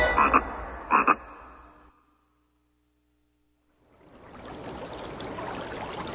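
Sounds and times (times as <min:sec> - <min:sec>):
frog croaking: 0:00.2 - 0:01.9.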